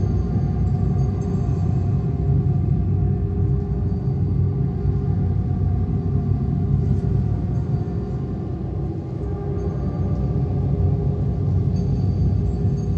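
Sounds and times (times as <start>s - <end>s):
eerie ambience: 0.0s - 12.9s.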